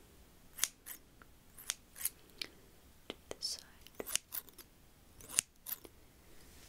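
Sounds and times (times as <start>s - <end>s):
scissors snipping layered hair during a haircut: 0.6s - 2.1s, 3.8s - 5.9s.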